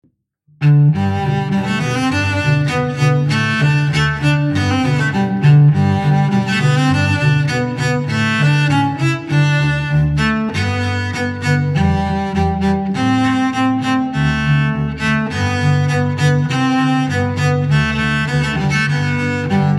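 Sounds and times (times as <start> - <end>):
violins: 0.6 - 19.7.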